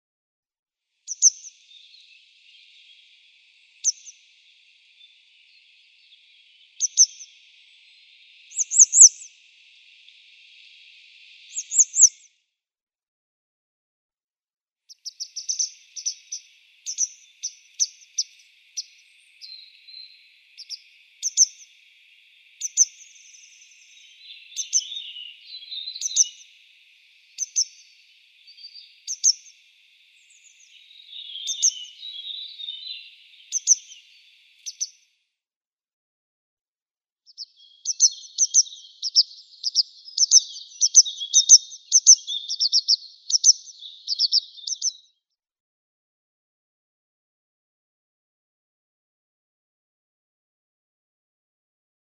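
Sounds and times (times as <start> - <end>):
grey wagtail calls: 1.1 - 12.3, 14.9 - 35.0, 37.3 - 45.0.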